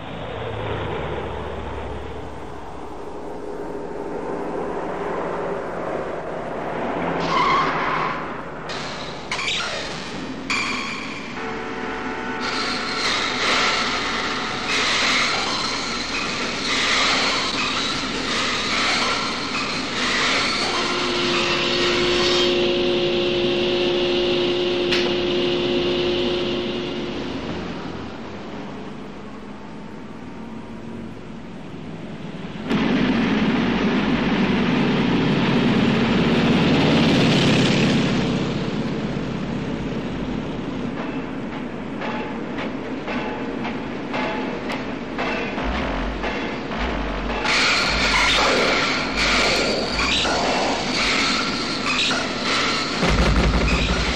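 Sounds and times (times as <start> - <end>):
vehicle traffic roaring through city streets: 0.0 - 9.4, 10.2 - 54.1
high metallic squeals: 7.2 - 24.6, 45.4 - 54.1.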